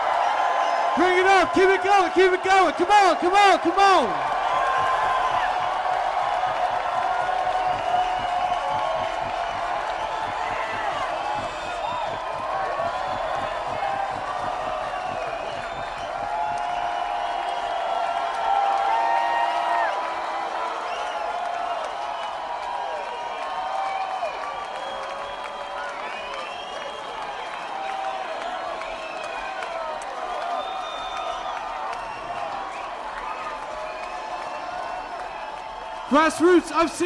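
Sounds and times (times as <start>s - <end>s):
large crowd cheering and screaming: 0.0s - 37.0s
speech: 1.0s - 4.3s, 36.2s - 37.0s.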